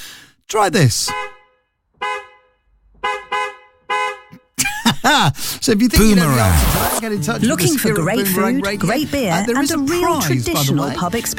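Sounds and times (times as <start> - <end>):
speech: 0.5 - 1.2, 5.0 - 11.3
car horn honking: 1.2 - 4.4
brief burst of other noise: 6.0 - 7.0.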